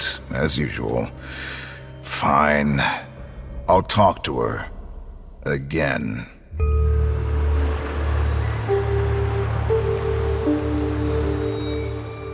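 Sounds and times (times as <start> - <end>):
speech: 0.3 - 1.6, 2.2 - 3.1, 3.7 - 4.8, 5.4 - 6.8
flowing river water: 6.6 - 12.3.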